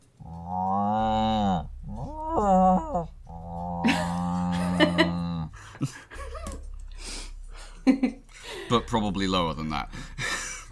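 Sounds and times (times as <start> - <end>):
person imitating cow mooing: 0.2 - 5.5
laughter: 3.8 - 6.6
speech: 8.8 - 10.1.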